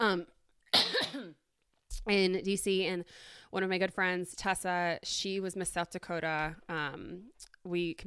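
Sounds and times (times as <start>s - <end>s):
speech: 0.1s - 1.4s, 2.0s - 8.0s
person coughing: 0.8s - 1.4s.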